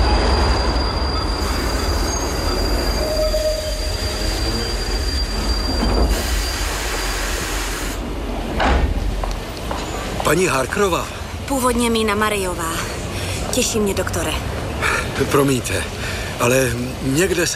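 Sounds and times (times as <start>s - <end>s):
train wheels squealing and screeching: 0.0s - 7.6s
train arriving on rails: 0.0s - 17.5s
speech: 10.3s - 12.9s, 13.6s - 14.5s, 15.2s - 17.5s.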